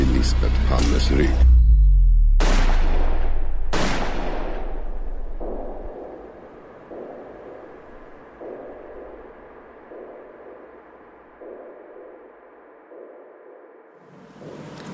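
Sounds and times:
low rumble: 0:00.0 - 0:10.6
speech: 0:00.2 - 0:01.6
loud sharp gunshots fired at close range: 0:02.4 - 0:13.3.

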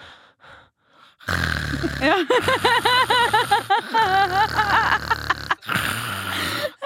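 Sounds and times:
person imitating a man's snoring with a throaty snort: 0:01.2 - 0:06.8
laughter: 0:01.8 - 0:05.7
speech: 0:02.0 - 0:05.0.

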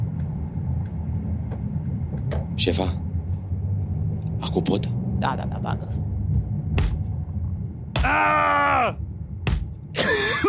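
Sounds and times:
low rumble: 0:00.0 - 0:10.4
speech: 0:02.6 - 0:03.0, 0:04.4 - 0:06.0, 0:08.0 - 0:09.0
man groaning in pain: 0:08.0 - 0:09.0
man screaming in pain: 0:08.0 - 0:09.0.

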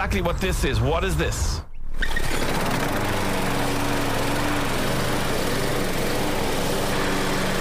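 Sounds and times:
speech: 0:00.0 - 0:02.2
petrol lawnmower engine running: 0:02.0 - 0:07.5.

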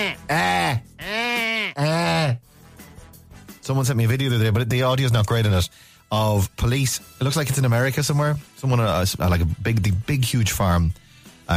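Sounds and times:
speech: 0:00.0 - 0:00.9, 0:03.7 - 0:11.5
person imitating wavering nasal goat bleats: 0:00.0 - 0:02.4.

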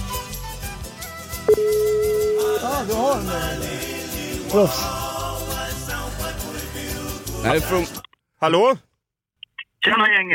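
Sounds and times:
music playing: 0:00.0 - 0:08.0
short electronic beep of a telephone call: 0:01.5 - 0:02.6
steady unbroken telephone call tone: 0:01.5 - 0:02.6
speech: 0:02.8 - 0:03.8, 0:04.5 - 0:05.0, 0:07.4 - 0:08.9, 0:09.8 - 0:10.3.

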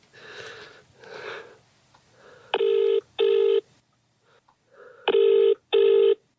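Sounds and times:
soft breathy noises: 0:00.0 - 0:02.8, 0:04.1 - 0:05.2
phone ringing with incoming call: 0:02.6 - 0:03.7, 0:05.1 - 0:06.2.

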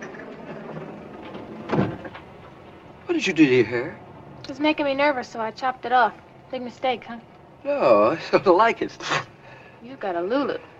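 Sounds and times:
elevator door sliding shut: 0:00.0 - 0:03.6
speech: 0:03.1 - 0:10.7.

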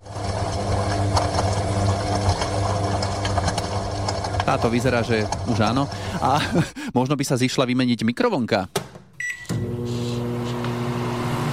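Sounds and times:
worn-out washing machine motor drone: 0:00.0 - 0:06.2, 0:09.5 - 0:11.5
speech: 0:04.5 - 0:08.9
laughter: 0:06.0 - 0:06.9.

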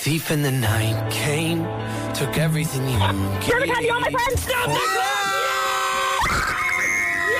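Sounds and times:
speech: 0:00.0 - 0:05.1
music: 0:00.0 - 0:07.3
excited woman's scream of joy after a music quiz: 0:04.6 - 0:07.3.

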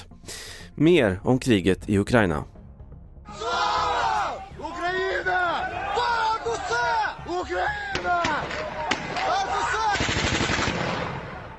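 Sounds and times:
speech: 0:00.8 - 0:02.6
raised voices of a protest crowd: 0:03.3 - 0:10.1
automatic gunfire over a protest crowd: 0:08.2 - 0:11.4
single sharp gunshot: 0:10.0 - 0:11.5.

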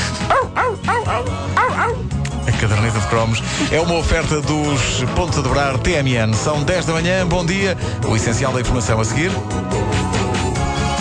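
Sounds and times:
several voices imitating dog barking in a song: 0:00.2 - 0:02.1
speech: 0:02.6 - 0:10.2.

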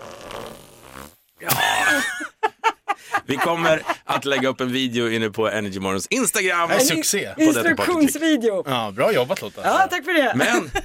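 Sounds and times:
fart-like blast made by blowing air through a straw in an armpit: 0:00.0 - 0:01.3
laughter: 0:01.4 - 0:04.7, 0:10.4 - 0:10.8
speech: 0:03.3 - 0:10.8.

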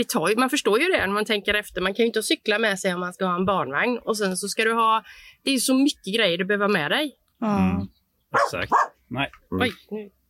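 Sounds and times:
speech: 0:00.0 - 0:10.2
dog barking: 0:08.3 - 0:09.0.

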